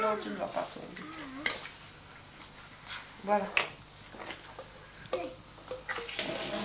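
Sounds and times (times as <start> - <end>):
speech: 0.1 - 1.2, 3.2 - 3.7
water splashing while a drinking bottle is rinsed: 5.9 - 6.6.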